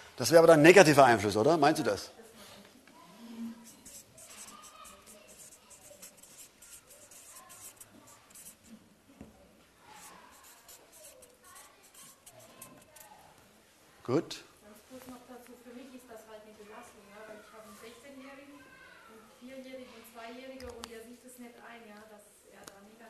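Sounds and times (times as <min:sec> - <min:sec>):
speech: 0:00.2 - 0:02.2, 0:14.1 - 0:14.5
pen scratching across paper while writing: 0:03.6 - 0:08.7, 0:09.9 - 0:13.2.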